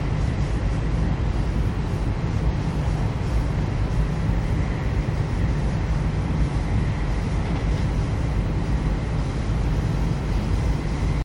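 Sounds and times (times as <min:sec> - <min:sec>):
train sound effect: 0:00.0 - 0:11.2.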